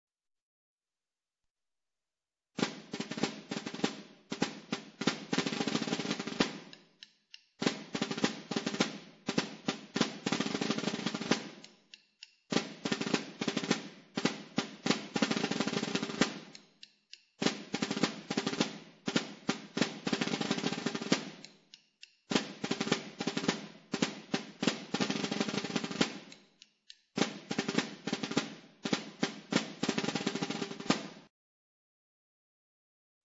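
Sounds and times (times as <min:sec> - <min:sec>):
palillera drums playing in Alcañiz: 0:02.6 - 0:06.8, 0:07.6 - 0:11.7, 0:12.5 - 0:16.6, 0:17.4 - 0:21.5, 0:22.3 - 0:26.4, 0:27.2 - 0:31.2.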